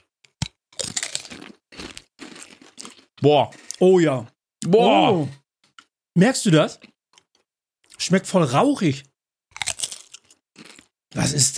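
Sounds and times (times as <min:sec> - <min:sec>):
thin brittle potato chips crunching: 0:00.3 - 0:03.8, 0:09.5 - 0:10.9
speech: 0:03.2 - 0:05.4, 0:06.2 - 0:06.9, 0:08.0 - 0:09.1, 0:11.2 - 0:11.5.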